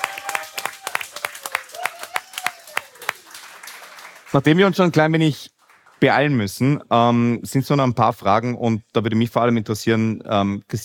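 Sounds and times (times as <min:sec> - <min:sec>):
applause for an ice hockey club official at a panel event: 0:00.0 - 0:06.4
speech: 0:04.3 - 0:10.8.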